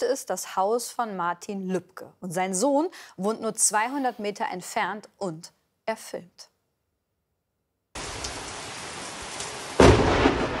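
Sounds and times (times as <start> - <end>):
speech: 0.0 - 6.5
steady rain downpour: 8.0 - 10.5
thunder crack from lightning strike on house: 8.0 - 10.5.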